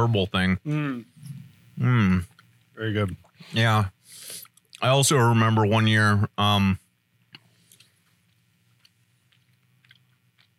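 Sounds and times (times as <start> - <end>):
speech: 0.0 - 1.1, 1.8 - 6.8
chewing soft candy: 4.4 - 4.8, 7.3 - 10.5.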